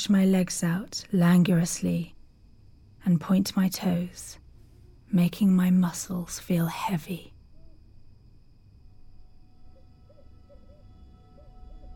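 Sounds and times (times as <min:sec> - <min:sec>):
speech: 0:00.0 - 0:02.2, 0:03.0 - 0:04.4, 0:05.1 - 0:07.3
thin constant hum: 0:00.0 - 0:11.9
owl hooting: 0:09.6 - 0:11.9.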